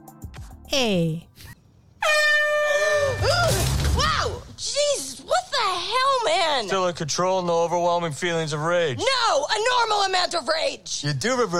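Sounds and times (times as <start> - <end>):
speech: 0.7 - 1.5, 4.6 - 11.5
air horn blast with warbling honks: 2.0 - 3.3.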